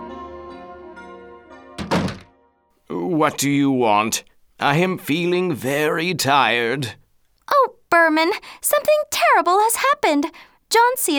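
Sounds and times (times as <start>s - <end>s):
drawn-out tonal creak of a door being opened: 1.8s - 2.4s
speech: 3.2s - 7.0s, 8.0s - 11.1s.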